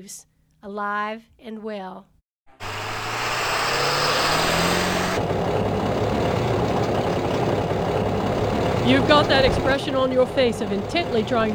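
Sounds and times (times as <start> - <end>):
speech: 0.0 - 2.1, 8.9 - 11.5
open-top car engine running: 2.6 - 11.5.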